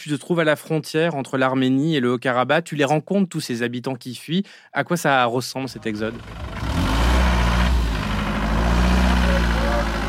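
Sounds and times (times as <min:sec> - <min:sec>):
speech: 0:00.0 - 0:06.5
car engines idling as vehicles pull up: 0:05.7 - 0:10.0.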